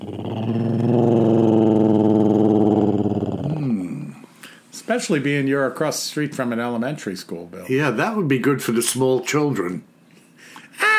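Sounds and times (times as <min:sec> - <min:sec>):
human voice imitating the growl of a Rougarou monster: 0:00.0 - 0:04.2
speech: 0:04.9 - 0:09.9.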